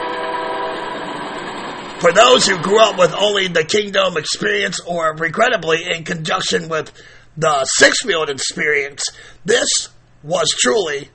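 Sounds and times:
rumble of rail cars on tracks behind a baseball stadium: 0.0 - 3.2
train horn blaring behind a baseball stadium: 0.0 - 3.2
speech: 2.0 - 11.1.

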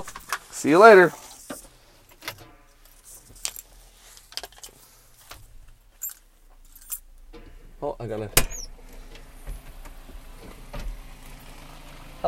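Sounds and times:
speech: 0.6 - 1.2, 8.0 - 8.5
keys jangling: 3.0 - 3.8, 6.0 - 7.2.

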